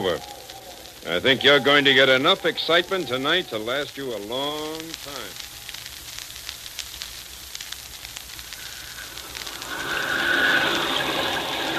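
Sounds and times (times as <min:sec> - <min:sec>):
speech: 0:00.0 - 0:00.4, 0:01.0 - 0:05.5
rain falling: 0:00.0 - 0:11.7.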